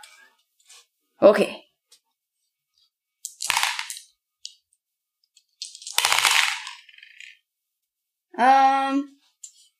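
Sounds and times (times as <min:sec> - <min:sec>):
speech: 0:01.2 - 0:01.6, 0:08.4 - 0:09.1
five dice rolled onto a hard surface: 0:03.2 - 0:04.6, 0:05.4 - 0:07.4.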